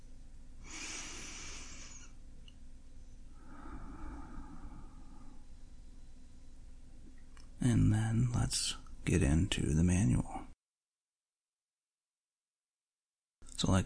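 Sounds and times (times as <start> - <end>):
person taking a deep breath and exhaling through the mouth: 0.6 - 2.2, 3.3 - 5.8
speech: 7.6 - 10.4.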